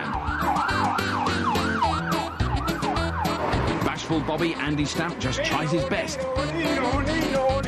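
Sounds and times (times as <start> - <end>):
police pursuit car siren wailing: 0.0 - 5.1
speech: 4.1 - 7.5.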